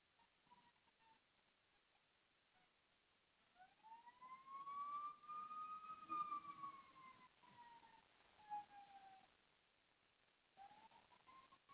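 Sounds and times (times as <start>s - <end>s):
faint tones: 0.0s - 11.7s
hiss: 0.0s - 11.7s
emergency vehicle siren: 3.6s - 9.2s.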